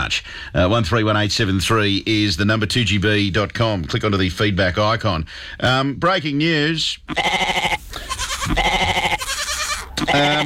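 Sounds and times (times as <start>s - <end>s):
speech: 0.1s - 7.8s, 10.1s - 10.4s
goat bleating: 7.1s - 10.4s.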